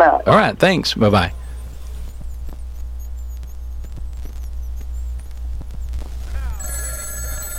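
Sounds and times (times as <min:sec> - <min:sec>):
steady low hum: 0:00.0 - 0:07.5
speech: 0:00.2 - 0:01.4
telephone with shrill electronic ring: 0:06.3 - 0:07.5.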